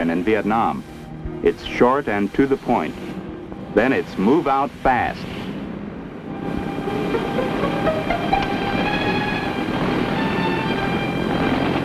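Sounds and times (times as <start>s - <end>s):
speech: 0.0s - 3.1s, 3.7s - 5.4s
Huey helicopter taking off with turbine whine and rotor noise: 6.3s - 11.8s.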